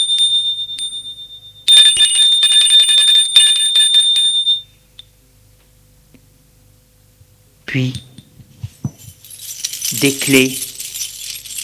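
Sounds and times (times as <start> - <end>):
doorbell with metallic rattling ring: 0.0 - 4.7
speech: 7.8 - 8.1, 10.0 - 10.7.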